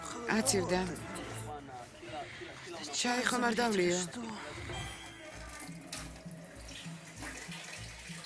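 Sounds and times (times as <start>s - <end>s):
speech: 0.3s - 1.1s, 3.0s - 4.5s
water running steadily from a tap: 5.2s - 8.2s.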